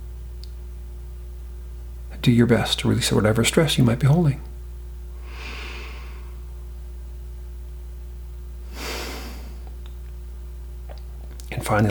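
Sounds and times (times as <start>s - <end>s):
low steady hum: 0.0s - 11.8s
speech: 2.2s - 4.5s
slow breath in and calming breath out during a relaxation exercise: 5.2s - 6.5s, 8.6s - 9.8s.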